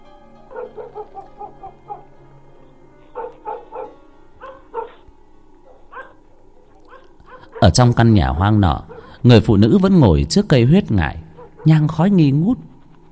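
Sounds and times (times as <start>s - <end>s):
German shepherd dogs barking outside at night: 0.5s - 2.2s, 3.1s - 8.0s, 8.6s - 9.2s, 11.2s - 11.9s
speech: 7.6s - 12.7s.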